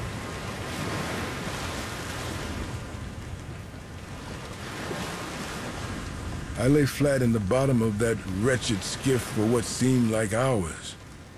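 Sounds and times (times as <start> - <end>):
gusts of wind: 0.0 - 11.3
rough ocean waves on open sea: 0.0 - 11.3
speech: 6.6 - 11.0.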